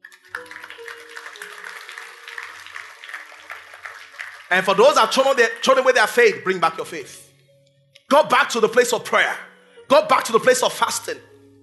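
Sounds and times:
audience clapping: 0.0s - 6.0s
speech: 4.5s - 7.3s, 8.1s - 11.3s.

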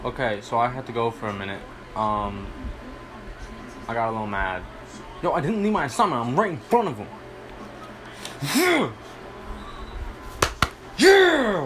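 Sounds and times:
speech: 0.0s - 2.8s, 3.9s - 7.2s, 8.4s - 9.1s, 11.0s - 11.6s
quiet low room hum: 0.0s - 11.6s
hand slapping a ball away: 10.4s - 10.8s.

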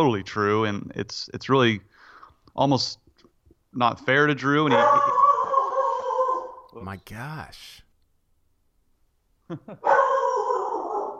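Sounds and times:
speech: 0.0s - 1.9s, 2.6s - 3.0s, 3.7s - 5.1s, 6.8s - 7.8s, 9.5s - 10.2s
dog barking: 4.6s - 6.7s, 9.8s - 11.1s.

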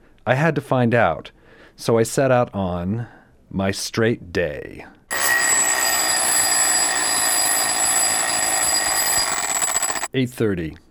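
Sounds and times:
speech: 0.2s - 5.0s, 10.1s - 10.8s
electronic alarm clock ringing: 5.1s - 10.1s.

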